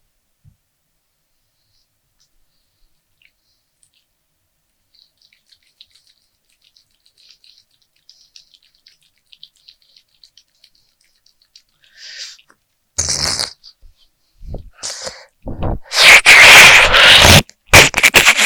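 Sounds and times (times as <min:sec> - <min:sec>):
lotion squeezed from a bottle squelching and dripping: 0:03.2 - 0:12.8
sputtering squirt of lotion: 0:04.8 - 0:13.8, 0:15.8 - 0:18.4.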